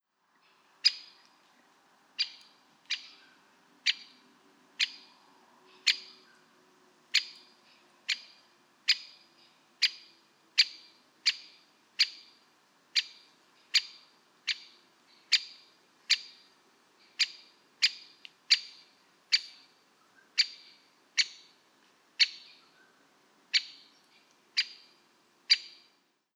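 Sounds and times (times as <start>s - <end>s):
great spotted woodpecker Dendrocopos major call: 0.8s - 1.3s, 2.2s - 4.2s, 4.8s - 5.1s, 5.8s - 6.4s, 7.1s - 12.4s, 13.0s - 16.5s, 17.1s - 21.6s, 22.2s - 26.0s.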